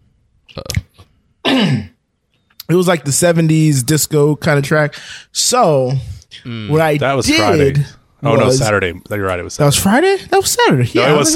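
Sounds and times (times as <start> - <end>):
speech: 0.5 - 0.8, 2.7 - 11.3
loud throat clearing: 0.6 - 2.0
harsh sustained cough: 1.4 - 2.0.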